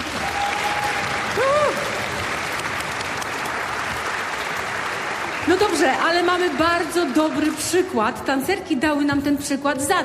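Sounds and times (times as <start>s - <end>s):
audience applause: 0.0s - 8.0s
speech: 5.6s - 10.0s.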